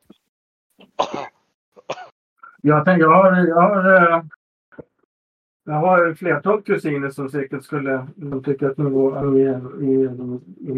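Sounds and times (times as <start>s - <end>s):
person clearing throat: 0.8s - 2.1s
speech: 2.6s - 4.9s, 5.6s - 10.7s.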